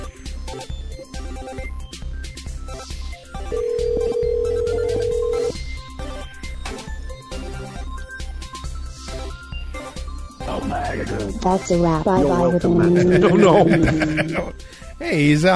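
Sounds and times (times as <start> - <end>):
loud busy music: 0.0 - 15.3
phone line ringback tone: 3.5 - 5.6
speech: 11.4 - 15.5
laughter: 12.0 - 14.6.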